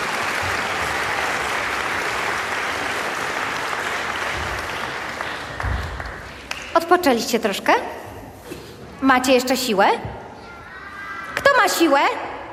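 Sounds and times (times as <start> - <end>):
large audience clapping: 0.0 - 6.8
speech: 6.8 - 8.0, 9.0 - 10.1, 11.7 - 12.2.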